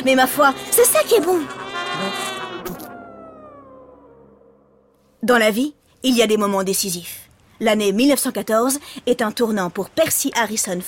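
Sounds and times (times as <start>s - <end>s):
speech: 0.0s - 2.3s, 5.2s - 10.8s
mosquito buzzing: 0.0s - 5.2s.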